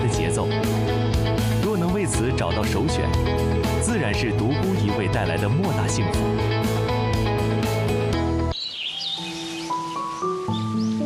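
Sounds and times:
soft musical backdrop: 0:00.0 - 0:11.0
speech: 0:02.4 - 0:06.9
birds chirping and warbling in a forest: 0:08.5 - 0:11.0.

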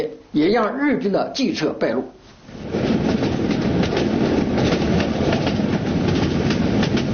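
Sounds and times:
speech: 0:00.0 - 0:02.8
train wheels clacking over rail joints: 0:02.5 - 0:07.1.

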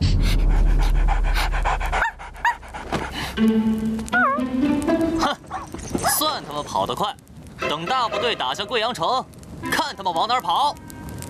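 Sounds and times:
dog panting rapidly: 0:00.1 - 0:03.4
speech: 0:03.4 - 0:04.2, 0:06.2 - 0:11.2
dog whimpering and whining: 0:04.1 - 0:04.5.

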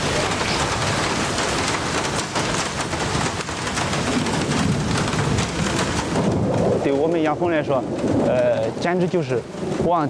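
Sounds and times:
distant thunder rumbling: 0:00.0 - 0:10.0
heavy rain: 0:00.0 - 0:10.0
speech: 0:07.0 - 0:10.0.

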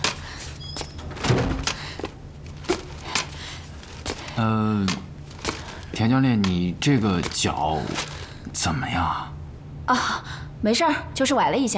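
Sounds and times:
door being pushed shut: 0:01.0 - 0:01.8
speech: 0:04.4 - 0:05.1, 0:06.0 - 0:11.7.

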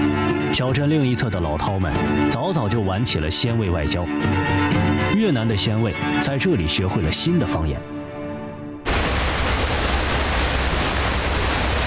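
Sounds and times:
speech: 0:00.6 - 0:08.0
massive waterfall on the China–Vietnam border roaring: 0:08.9 - 0:11.8.

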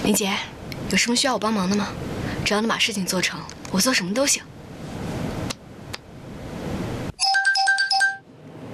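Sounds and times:
speech: 0:00.1 - 0:04.5
mobile phone ringtone with quick bright electronic beeping melody: 0:07.2 - 0:08.3.

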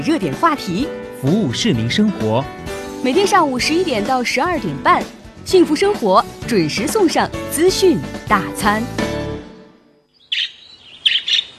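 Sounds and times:
speech: 0:00.0 - 0:09.1
parrot chirping: 0:10.2 - 0:11.5.

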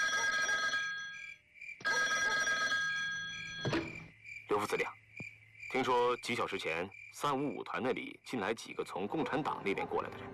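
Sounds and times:
old-fashioned telephone bell ringing: 0:00.0 - 0:03.9
speech: 0:04.6 - 0:05.0, 0:05.7 - 0:10.3.

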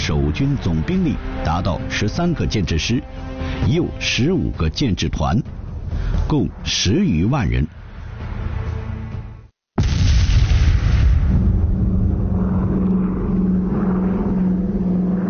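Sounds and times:
Japanese propeller aircraft engines droning near Nanjing: 0:00.0 - 0:08.2, 0:11.4 - 0:15.2
speech: 0:00.1 - 0:05.5, 0:06.3 - 0:07.8
heavy blast-like burst of Japanese artillery near Nanjing: 0:09.8 - 0:15.2
low booms: 0:09.8 - 0:15.2.

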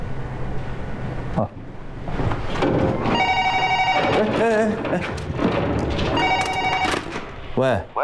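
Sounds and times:
busy noise: 0:00.0 - 0:08.0
speech: 0:01.4 - 0:01.6, 0:04.2 - 0:06.1, 0:07.6 - 0:08.0
telephone ringing: 0:03.1 - 0:04.9, 0:06.0 - 0:07.3.

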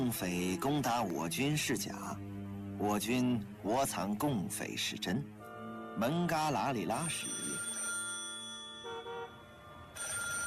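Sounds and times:
speech: 0:00.1 - 0:05.4, 0:06.0 - 0:07.7
telephone ringing in a basement: 0:06.8 - 0:10.4.

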